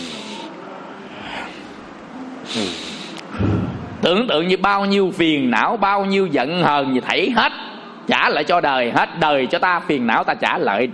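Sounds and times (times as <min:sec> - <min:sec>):
sharp nasal snort-like inhale: 0:00.0 - 0:01.8, 0:02.4 - 0:03.6
person breathing deeply in and out in a breathing exercise: 0:00.0 - 0:03.9
steady hiss: 0:00.0 - 0:10.9
speech: 0:02.5 - 0:02.9, 0:04.0 - 0:10.9.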